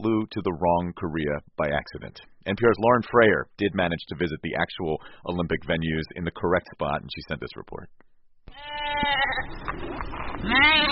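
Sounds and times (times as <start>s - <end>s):
speech: 0.0s - 10.9s
sheep bleating on a hilly farm in Pyeongchang: 8.5s - 9.5s, 10.4s - 10.9s.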